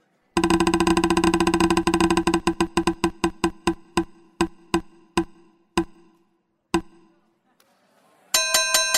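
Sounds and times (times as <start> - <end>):
prize wheel of discussion topics clicking: 0.4 - 6.2, 6.8 - 7.1.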